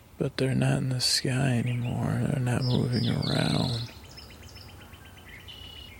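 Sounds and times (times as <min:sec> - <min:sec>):
birds chirping: 0:00.0 - 0:05.9
faint low hum: 0:00.0 - 0:05.9
speech: 0:00.2 - 0:04.0
thin whistled bird call: 0:02.6 - 0:05.9.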